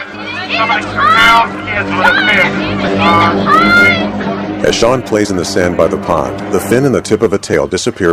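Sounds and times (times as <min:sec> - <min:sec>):
busy crowd hubbub on a beach: 0:00.0 - 0:08.1
loud cries from a beach crowd: 0:00.1 - 0:04.2
speech: 0:00.6 - 0:08.1.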